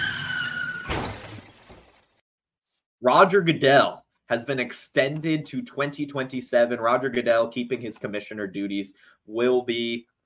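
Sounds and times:
tires screeching: 0.0s - 1.0s
car crash of shattering glass and crunching metal: 0.8s - 2.2s
debris clattering: 0.9s - 2.2s
speech: 3.0s - 10.1s.

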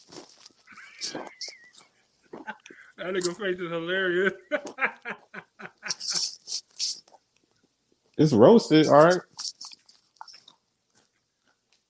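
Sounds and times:
biting and chewing barbecue potato chips: 0.0s - 2.6s
laughter: 0.7s - 1.6s, 4.2s - 6.6s
speech: 3.0s - 5.2s, 8.2s - 9.3s.

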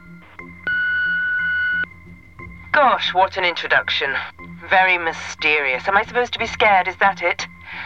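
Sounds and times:
electronic answering machine beep: 0.0s - 1.9s
speech: 2.8s - 7.8s.

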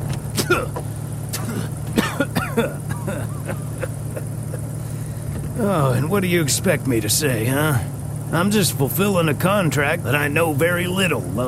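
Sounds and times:
old rattling jalopy car driving with a steady low engine drone: 0.0s - 11.4s
speech: 0.5s - 1.8s, 5.6s - 11.4s.

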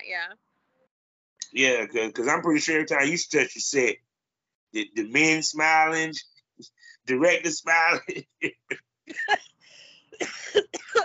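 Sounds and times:
speech: 0.1s - 0.5s, 1.5s - 4.1s, 4.7s - 9.5s, 10.2s - 11.0s
laughter: 1.6s - 3.9s, 4.8s - 6.2s, 7.1s - 9.4s
woman coughing harshly after smoking weed: 9.1s - 9.4s, 10.2s - 11.0s.

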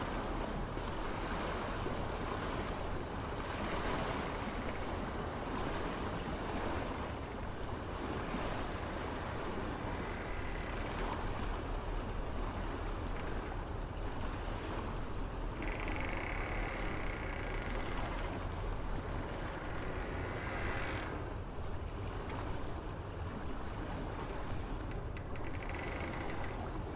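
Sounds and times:
constant wind: 0.0s - 26.9s
waves washing around an old ship: 0.0s - 26.9s
old ship creaking: 8.7s - 22.5s, 24.7s - 26.9s.

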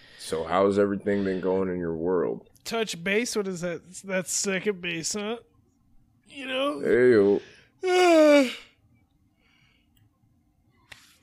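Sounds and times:
speech: 0.3s - 5.5s, 6.3s - 8.7s
person yawning: 7.8s - 8.8s.

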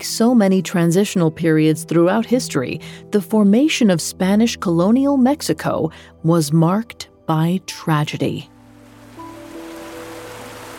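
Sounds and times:
speech: 0.0s - 8.5s
flowing cold river water: 8.6s - 10.7s.

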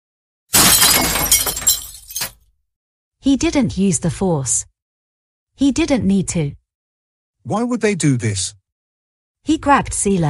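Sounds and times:
bridge chair smashed against a marble column: 0.5s - 2.3s
splintering, clattering debris: 0.6s - 2.4s
speech: 3.2s - 4.7s, 5.6s - 6.6s, 7.4s - 8.6s, 9.4s - 10.2s.

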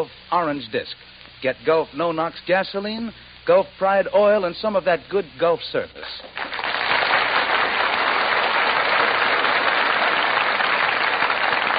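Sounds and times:
speech: 0.0s - 6.6s
large theater audience applauding: 6.4s - 11.7s.

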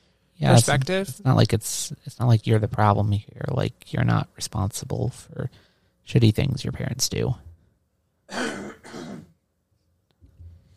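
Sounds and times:
speech: 0.4s - 7.5s
person clearing throat with a cough: 8.3s - 9.4s.

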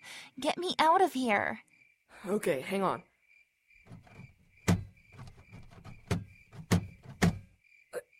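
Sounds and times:
speech: 0.4s - 3.1s
sharp knock: 3.9s - 7.5s
jammed door rattling and scraping as it is shoved: 3.9s - 7.6s.

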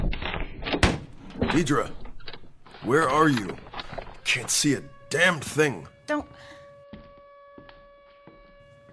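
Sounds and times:
speech: 1.5s - 2.0s, 2.8s - 3.6s, 4.3s - 6.6s
siren steady tone: 2.7s - 8.9s.

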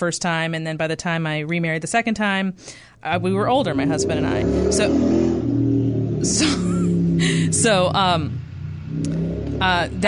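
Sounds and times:
speech: 0.0s - 5.6s, 6.2s - 6.8s, 7.5s - 10.0s
car engine humming: 3.1s - 10.0s.

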